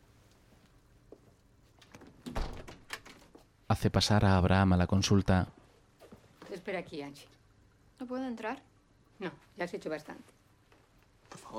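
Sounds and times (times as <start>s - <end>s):
door at a consulting room swinging shut: 2.0s - 3.3s
speech: 3.7s - 5.6s, 6.7s - 7.4s, 8.0s - 10.3s.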